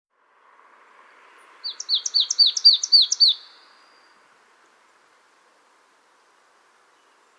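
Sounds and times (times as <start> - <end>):
faint background noise: 0.1 - 7.3
marsh tit Poecile palustris call: 1.6 - 4.2.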